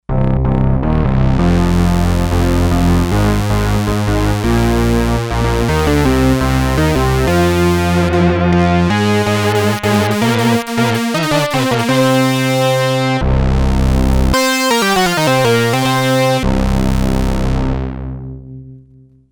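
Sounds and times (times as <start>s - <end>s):
Sequential Circuits Six-Trak synthesizer stack: 0.8s - 18.7s.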